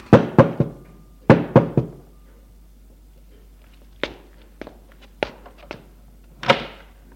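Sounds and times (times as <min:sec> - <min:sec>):
insistent knocking on a door: 0:00.1 - 0:02.0.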